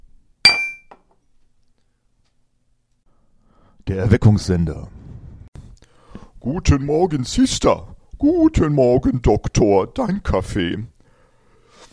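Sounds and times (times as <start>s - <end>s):
glasses clinking in a toast: 0.5s - 1.0s
speech: 3.9s - 5.0s, 6.4s - 10.9s.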